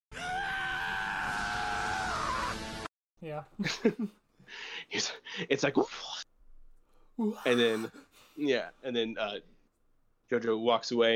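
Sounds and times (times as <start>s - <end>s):
prolonged strained male scream of an anime villain being impaled: 0.1s - 2.8s, 7.2s - 8.0s
speech: 3.2s - 6.2s, 7.2s - 9.5s, 10.3s - 11.1s.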